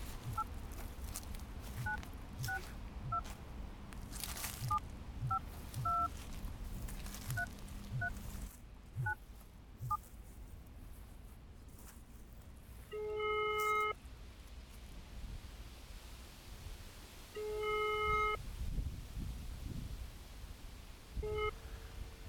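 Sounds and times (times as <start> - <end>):
steady hiss: 0.0 - 22.2
telephone touch-tone dialing beeps: 0.2 - 0.5, 1.8 - 3.3, 4.6 - 6.1, 7.3 - 8.2, 17.5 - 18.4, 21.2 - 21.6.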